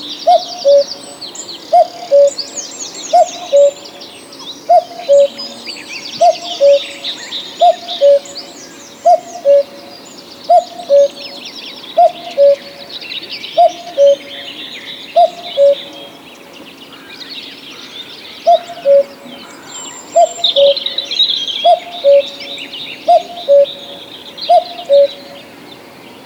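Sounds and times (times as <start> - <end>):
other songbirds chattering faintly in the background: 0.0 - 26.2
cuckoo calling its two-note cu-coo: 0.2 - 1.1, 1.7 - 2.5, 3.1 - 4.0, 4.6 - 11.4, 12.0 - 12.9, 13.6 - 16.2, 18.5 - 25.5.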